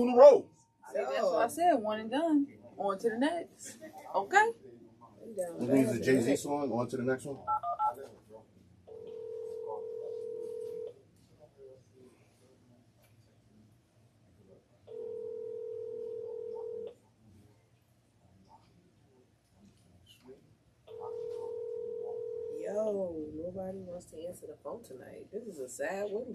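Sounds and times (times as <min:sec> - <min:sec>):
speech: 0:00.0 - 0:08.2, 0:22.7 - 0:26.3
ringback tone of an outgoing phone call: 0:08.9 - 0:10.9, 0:14.9 - 0:16.9, 0:20.9 - 0:22.6.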